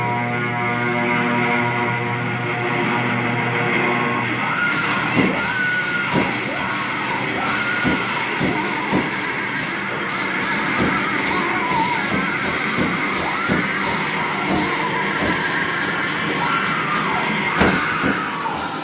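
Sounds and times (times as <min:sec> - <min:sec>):
dense noisy crowd: 0:00.0 - 0:18.8
group of people screaming and yelling at a scare attraction: 0:04.6 - 0:18.8.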